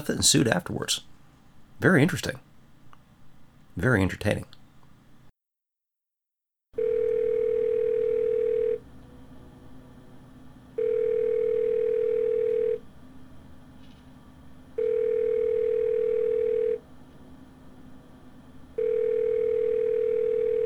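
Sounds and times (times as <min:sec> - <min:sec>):
speech: 0:00.0 - 0:01.2, 0:01.8 - 0:02.5, 0:03.8 - 0:04.6
long steady single-pitched telephone line beeps during a call: 0:06.8 - 0:08.8, 0:10.8 - 0:12.8, 0:14.8 - 0:16.8, 0:18.8 - 0:20.6.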